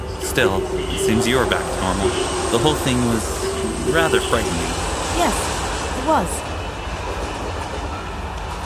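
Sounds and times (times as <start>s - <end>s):
train arriving at a station: 0.0s - 8.6s
speech: 0.4s - 5.5s, 6.1s - 6.4s.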